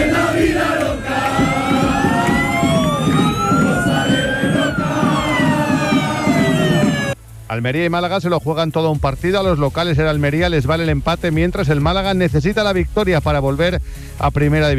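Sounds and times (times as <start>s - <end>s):
large crowd of football fans roaring and chanting: 0.0s - 7.2s
wailing siren-like tones: 0.0s - 7.2s
speech: 7.6s - 14.7s.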